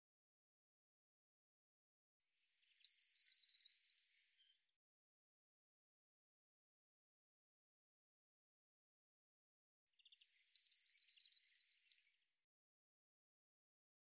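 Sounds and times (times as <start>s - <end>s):
Eurasian blue tit calling: 2.6s - 4.1s, 10.3s - 11.8s.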